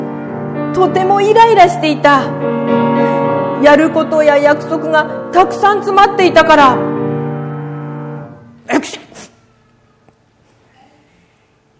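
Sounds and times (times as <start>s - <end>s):
speech: 0.8s - 2.8s, 3.6s - 6.9s, 8.7s - 9.3s
person with a cold sneezing at a bus stop in the rain: 8.6s - 9.5s.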